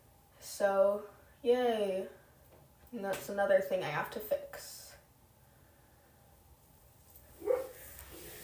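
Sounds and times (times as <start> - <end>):
speech: 0.5 - 2.2, 2.9 - 4.7
dog bark outside: 7.4 - 7.8.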